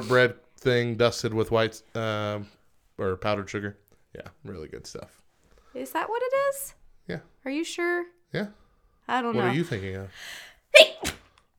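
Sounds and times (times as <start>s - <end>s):
speech: 0.0s - 5.2s, 5.8s - 11.2s
sneeze: 10.8s - 11.4s.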